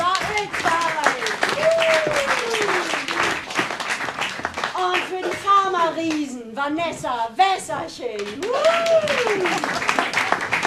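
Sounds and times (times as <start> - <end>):
roaring applause from an audience welcoming a guest onstage: 0.0 - 5.4, 8.3 - 10.6
speech: 6.6 - 10.2.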